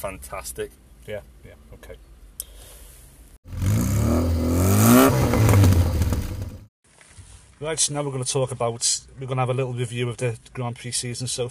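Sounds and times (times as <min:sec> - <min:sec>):
speech: 0:00.0 - 0:02.1, 0:07.6 - 0:11.4
Audi car engine revving while pulling up in car park: 0:03.5 - 0:06.7.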